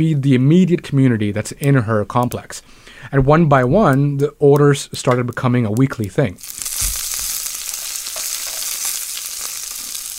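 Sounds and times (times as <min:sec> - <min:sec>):
speech: 0:00.0 - 0:07.0
food sizzling and crackling in a hot pan in a home apartment kitchen: 0:06.4 - 0:10.1.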